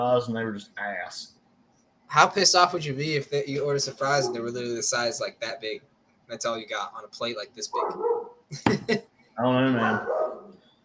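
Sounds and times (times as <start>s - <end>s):
speech: 0.0s - 1.4s, 2.1s - 10.2s
dog barking and whining: 4.2s - 4.5s, 7.7s - 8.4s, 9.8s - 10.6s.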